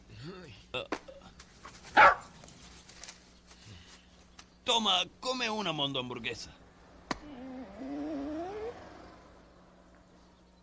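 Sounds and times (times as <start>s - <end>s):
speech: 0.2s - 1.0s, 4.8s - 6.6s
hungry dog barking: 1.9s - 2.4s
hungry dog whimpering: 7.3s - 8.8s.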